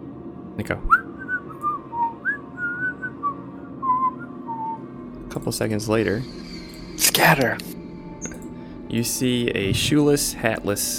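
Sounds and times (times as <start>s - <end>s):
low rumbling hum: 0.0s - 10.9s
speech: 0.6s - 1.0s, 5.3s - 7.8s, 8.9s - 10.9s
melodic whistled tune from the western end of a tunnel: 0.9s - 4.9s.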